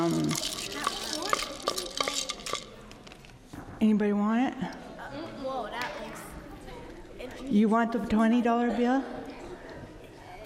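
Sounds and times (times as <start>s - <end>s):
utensil stirring food: 0.0s - 3.0s
speech: 3.8s - 4.8s, 7.4s - 9.2s.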